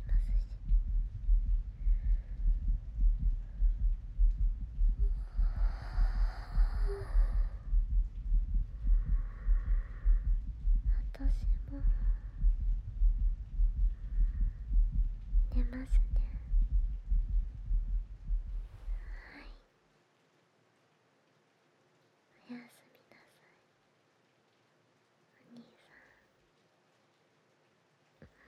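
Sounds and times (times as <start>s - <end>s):
soft whispering: 0.0s - 4.1s, 4.8s - 14.6s, 15.2s - 17.0s, 18.5s - 19.7s, 22.3s - 23.8s, 25.3s - 26.4s, 28.2s - 28.4s
human heartbeat: 0.0s - 19.6s.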